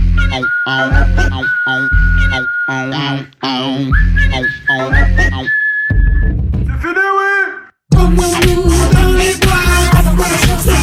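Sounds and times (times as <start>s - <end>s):
bright sustained whistled melody: 0.0s - 3.1s, 3.9s - 6.4s
voice-like bursts: 0.0s - 5.5s
pulsing rhythmic backing: 0.0s - 6.8s, 7.9s - 10.8s
speech: 0.4s - 4.6s.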